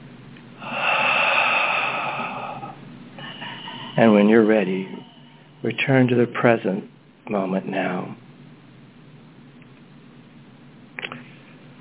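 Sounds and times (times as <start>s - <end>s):
long deep breath: 0.6s - 4.3s
speech: 4.0s - 8.2s.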